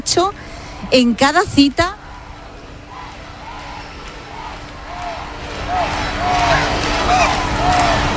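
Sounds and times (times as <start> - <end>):
outdoor crowd noise: 0.0 - 8.1
speech: 0.1 - 2.0
crowd chanting a name: 1.9 - 8.1.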